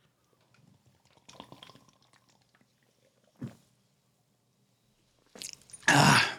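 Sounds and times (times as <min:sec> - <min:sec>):
beer sloshing and gulping from a can: 0:00.5 - 0:03.6.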